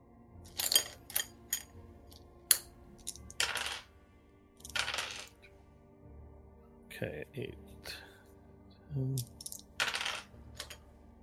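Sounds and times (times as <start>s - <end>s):
dice including d8s scooped up and rolled onto a table in a tabletop game: 0.5s - 1.7s, 2.5s - 3.9s, 4.6s - 5.5s, 9.2s - 10.8s
speech: 7.0s - 7.8s, 9.0s - 9.4s.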